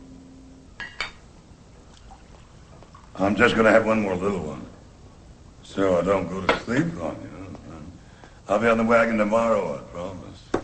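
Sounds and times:
glass clinking at a bar: 0.8s - 1.3s
faint soft trickle of a drink being poured at a bar: 1.9s - 3.2s
speech: 3.2s - 4.7s, 5.7s - 7.4s, 8.5s - 10.4s.

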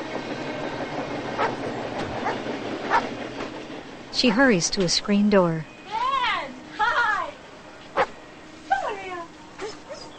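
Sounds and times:
faint clickety-clack rail beats: 0.0s - 6.2s
speeding train passing near a parked car: 0.0s - 10.1s
speech: 4.2s - 5.7s.

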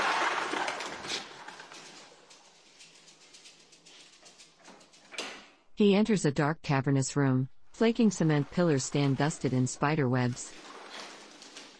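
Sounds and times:
pigeons flapping wings: 0.0s - 2.1s
speech: 5.8s - 10.6s.

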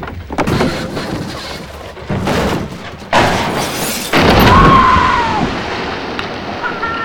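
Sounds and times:
heavy thuds and scrapes of a car going over a quarry edge: 0.0s - 4.6s
rushing, churning quarry water: 2.7s - 7.0s
loud splash of a car plunging into quarry water: 3.2s - 7.0s.

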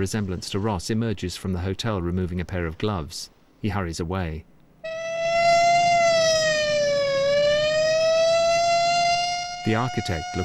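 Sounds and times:
speech: 0.0s - 4.5s, 9.6s - 10.4s
police car siren wailing: 4.8s - 10.4s.

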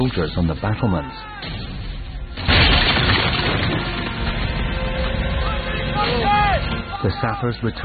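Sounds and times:
speech: 0.1s - 1.7s, 6.0s - 7.8s
French cannon firing a salvo at a fort's defenses: 1.4s - 6.9s.

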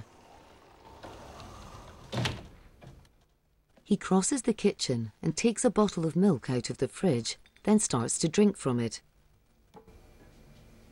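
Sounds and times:
sliding door sliding shut: 0.0s - 3.1s
speech: 3.9s - 9.1s.

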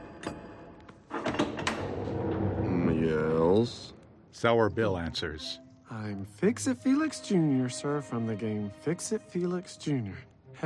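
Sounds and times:
heavy palace front door creaking and scraping open: 1.1s - 3.4s
speech: 4.4s - 10.6s.

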